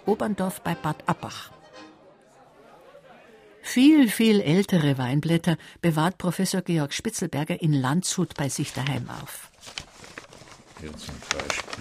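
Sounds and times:
speech: 0:00.1 - 0:01.6, 0:03.7 - 0:09.9, 0:10.8 - 0:11.7
soft paper crinkling as stones from an old cigar box are unwrapped: 0:08.3 - 0:11.7.

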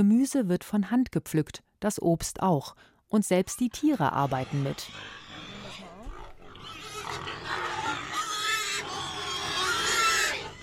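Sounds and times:
speech: 0:00.0 - 0:05.2
pigs grunting and snuffling while rooting: 0:03.5 - 0:10.6.

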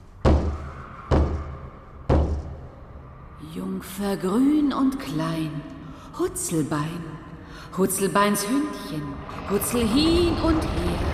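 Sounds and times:
knocks by hand on a heavy wooden door: 0:00.3 - 0:01.5, 0:02.1 - 0:02.6
speech: 0:03.4 - 0:11.1.

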